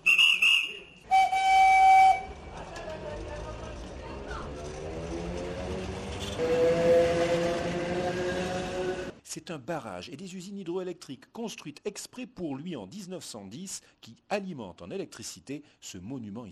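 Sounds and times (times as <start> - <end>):
compressed-air whistle of a historic electric train: 0.0 - 2.4
historic electric train departing with a quiet steady rolling rumble: 1.0 - 9.2
speech: 9.4 - 16.5.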